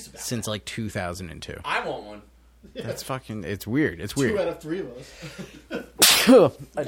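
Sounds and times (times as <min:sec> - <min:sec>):
speech: 0:00.0 - 0:06.8
sneeze: 0:06.0 - 0:06.6.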